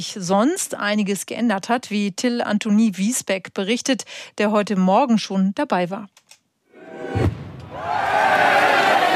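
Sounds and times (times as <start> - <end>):
speech: 0.0 - 6.2
large crowd shouting and cheering at a town stream in Memmingen Germany: 6.8 - 9.1
deep cannon shot in Memmingen Germany: 7.1 - 7.8.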